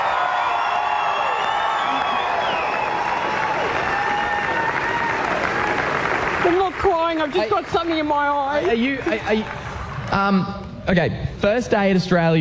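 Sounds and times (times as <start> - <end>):
crowd cheering and whooping at a television awards event: 0.0 - 6.4
large crowd applauding in a standing ovation at a television awards event: 0.0 - 10.4
speech: 7.3 - 12.3.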